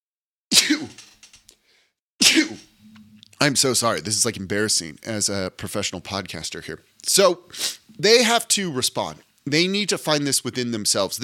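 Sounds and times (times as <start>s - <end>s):
loud sneezes: 0.5s - 1.0s, 2.2s - 2.8s
speech: 3.4s - 11.2s.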